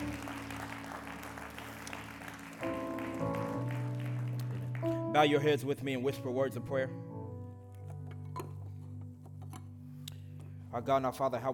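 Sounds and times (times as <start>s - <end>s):
large group of audience clapping hands: 0.0s - 5.2s
sustained organ or keyboard chords: 0.0s - 11.1s
speech: 5.2s - 7.1s, 10.8s - 11.5s.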